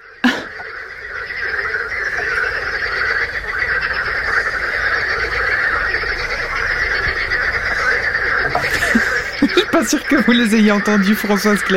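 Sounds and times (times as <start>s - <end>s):
chorus of frogs croaking at a small lake in the evening: 0.0s - 11.7s
laughter: 8.4s - 10.4s
speech: 9.8s - 11.7s.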